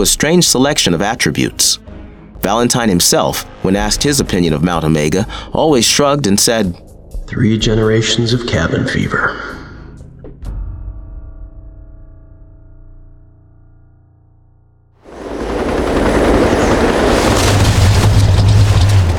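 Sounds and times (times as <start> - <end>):
speech: 0.0 - 9.6
small autogyro engine passing overhead: 15.1 - 19.1.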